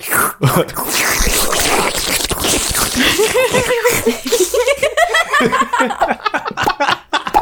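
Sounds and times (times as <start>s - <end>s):
speech: 0.0s - 1.4s
several people imitating a vacuum cleaner with their voices: 1.2s - 4.8s
laughter: 3.0s - 7.3s.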